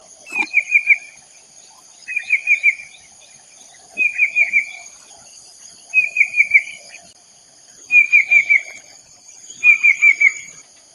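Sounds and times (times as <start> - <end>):
banded bay cuckoo calling: 0.3 - 1.2, 2.1 - 3.1, 4.0 - 5.0, 5.9 - 7.0, 7.9 - 8.9, 9.5 - 10.6.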